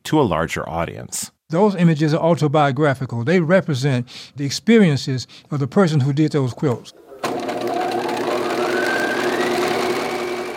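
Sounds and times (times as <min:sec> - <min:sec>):
speech: 0:00.1 - 0:07.0
sewing machine stitching quilt panels together: 0:06.9 - 0:10.5.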